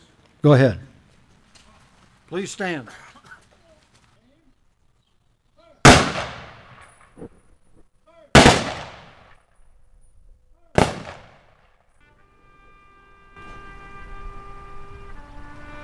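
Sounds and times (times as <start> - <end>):
rifle salute volley at veterans' ceremony: 0.0 - 4.6, 5.6 - 7.4, 8.1 - 9.4, 10.6 - 11.8
speech: 0.4 - 0.9, 2.3 - 3.1.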